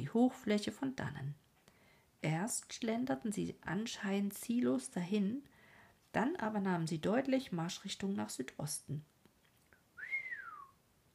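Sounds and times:
speech: 0.0 - 1.5, 2.2 - 5.5, 6.1 - 9.1
whistling through the teeth: 10.0 - 10.8.

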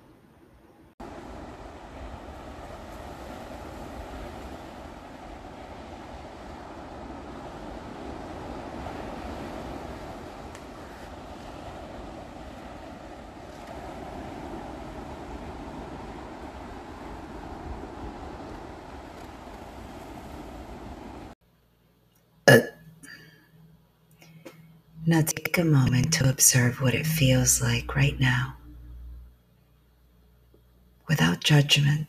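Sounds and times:
steady full roar of ocean surf: 1.0 - 21.4, 25.1 - 28.9
speech: 25.1 - 28.6, 31.5 - 32.0.

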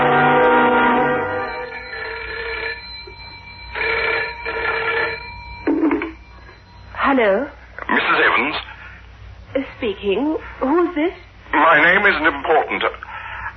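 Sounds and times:
telephone ringing: 0.1 - 8.7
speech: 9.9 - 13.1.

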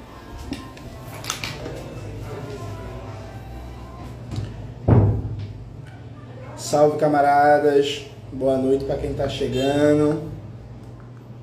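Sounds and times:
steady hum: 0.0 - 11.4
door swinging shut with a solid low thud: 4.8 - 5.6
speech: 6.7 - 10.4.

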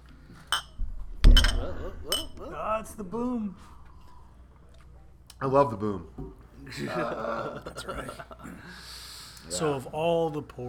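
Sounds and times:
glasses clinking in a toast: 0.5 - 2.5
speech: 2.0 - 3.8, 5.4 - 10.6
laughter: 6.6 - 8.7.

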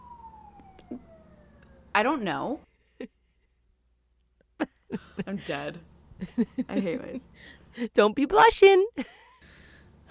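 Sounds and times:
emergency vehicle siren wailing: 0.0 - 2.7
speech: 2.0 - 3.1, 4.9 - 9.2.

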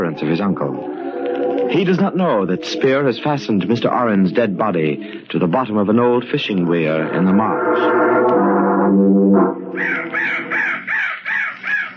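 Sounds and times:
brief low sustained tone: 0.0 - 10.6
speech: 0.2 - 10.5
crow cawing: 9.8 - 11.9.

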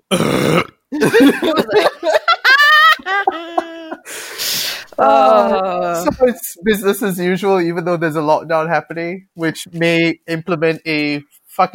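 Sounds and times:
voice imitating loud raspy burps: 0.0 - 1.6, 5.0 - 6.1
speech: 0.1 - 0.3, 6.2 - 11.7
laughter: 1.0 - 4.1.

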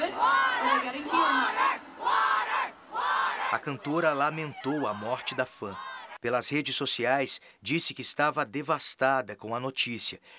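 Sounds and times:
large concert crowd chanting for water: 0.0 - 6.2
speech: 3.5 - 10.3.

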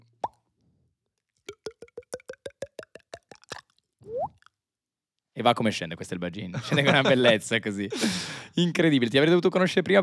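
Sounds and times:
mouth imitating uncorking a bottle with a pop: 0.0 - 0.4, 1.4 - 4.6
hollow tongue clicks: 1.5 - 4.5
speech: 5.4 - 10.0
laughter: 6.5 - 8.2.

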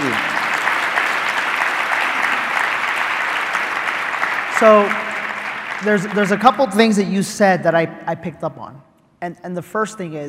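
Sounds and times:
audience applause: 0.0 - 7.1
speech: 4.6 - 5.0, 5.8 - 10.2.

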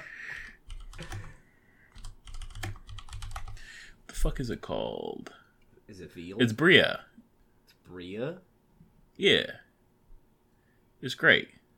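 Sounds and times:
typing a web search on a computer keyboard: 0.4 - 3.6
speech: 4.2 - 7.2, 7.9 - 8.5, 9.2 - 9.6, 11.0 - 11.6.

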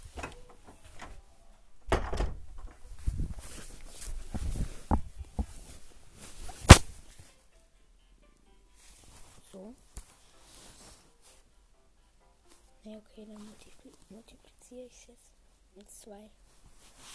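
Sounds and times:
door shutting with a thud and click: 0.0 - 1.2, 1.8 - 2.9
shuffling and handling noises: 2.6 - 7.4, 8.8 - 11.4, 12.4 - 15.1, 15.8 - 17.1
speech: 13.2 - 17.1.

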